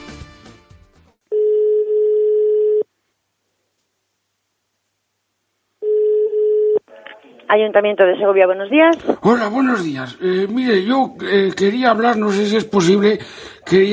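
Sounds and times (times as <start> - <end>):
ringback tone of a telephone call placed to a town hall: 1.3 - 2.8, 5.8 - 6.8
speech: 7.5 - 13.9.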